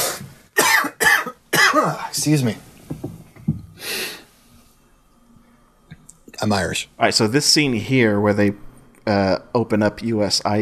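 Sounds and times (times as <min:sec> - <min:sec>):
person coughing harshly: 0:00.0 - 0:02.0
speech: 0:01.9 - 0:03.1, 0:06.4 - 0:10.6.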